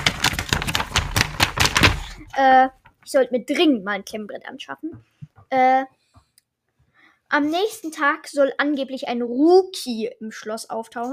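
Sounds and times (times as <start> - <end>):
stack of paper pages knocked against a hard surface: 0.0 - 2.2
speech: 2.4 - 6.0, 7.3 - 11.1.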